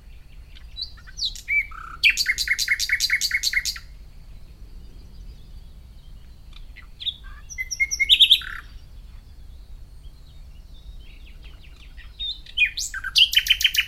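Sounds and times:
Common nightingale (Luscinia megarhynchos) song of repeated notes and whistles: 0.0s - 13.8s.

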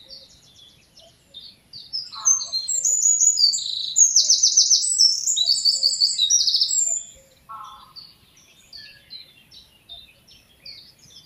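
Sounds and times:
Eurasian wren Troglodytes troglodytes singing trills and buzzy rattles: 0.0s - 11.2s
Eurasian wren scattered chirps and lower call: 0.0s - 11.2s.

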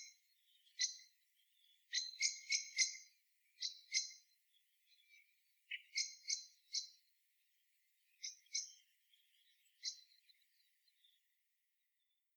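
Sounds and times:
common blackbird Turdus merula clicking chink calls: 0.0s - 4.2s, 4.9s - 7.0s, 8.2s - 10.2s.

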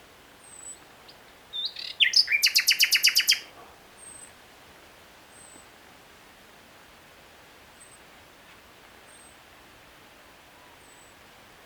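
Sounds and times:
common nightingale singing: 1.5s - 3.4s.

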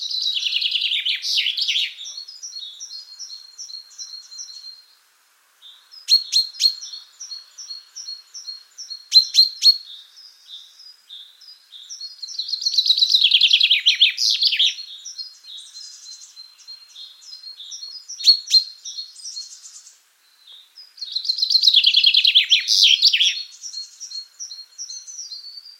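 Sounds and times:
common chaffinch Fringilla coelebs vocalizing: 0.0s - 25.7s.

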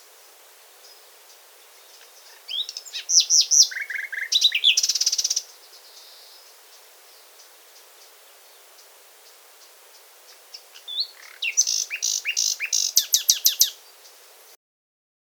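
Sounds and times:
common nightingale Luscinia megarhynchos singing: 0.0s - 14.6s.

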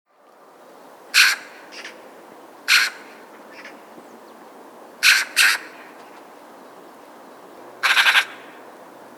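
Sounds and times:
Eurasian magpie squawking and chattering: 1.2s - 2.0s, 2.7s - 3.8s, 5.0s - 5.8s, 7.8s - 8.5s.

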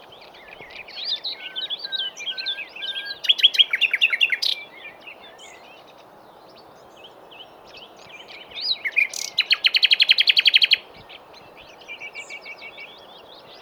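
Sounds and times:
common nightingale Luscinia megarhynchos singing: 0.0s - 13.5s.

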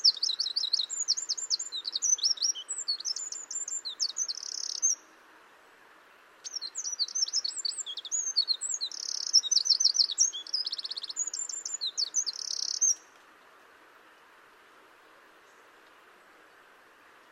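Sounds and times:
Eurasian wren Troglodytes troglodytes song of trills and buzzy rattles: 0.0s - 5.0s, 6.4s - 13.1s.

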